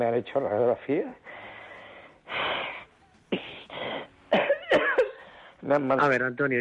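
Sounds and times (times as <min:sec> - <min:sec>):
speech: 0:00.0 - 0:01.3, 0:03.3 - 0:03.5, 0:05.6 - 0:06.5
person coughing with harsh chesty coughs and wheezy hacks: 0:04.3 - 0:05.3.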